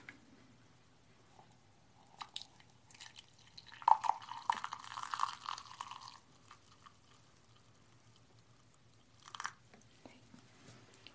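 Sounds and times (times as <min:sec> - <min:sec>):
water pouring into a teacup holding green tea: 0:02.0 - 0:09.6.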